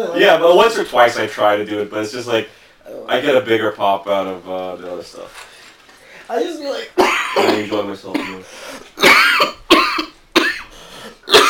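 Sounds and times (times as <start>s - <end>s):
speech: 0.0s - 5.5s, 6.3s - 9.6s
person coughing: 7.0s - 11.4s.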